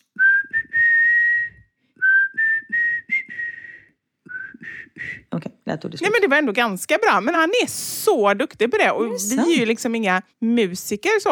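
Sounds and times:
person whistling a pop song melody: 0.0 - 5.3
speech: 4.9 - 11.3.

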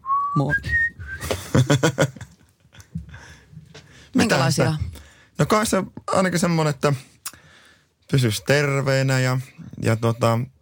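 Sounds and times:
high-pitched whistle sliding upward: 0.0 - 1.3
speech: 0.4 - 0.9, 1.6 - 2.2, 4.2 - 7.1, 8.1 - 10.5
laughter: 1.2 - 2.9.

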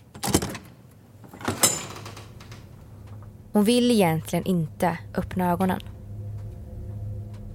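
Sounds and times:
dormitory door opening with click: 0.1 - 3.2
speech: 3.6 - 5.9.

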